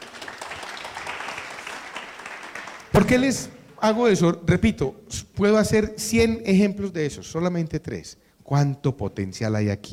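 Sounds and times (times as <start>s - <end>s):
applause from an audience at a talk: 0.0s - 3.0s
speech: 3.0s - 9.9s.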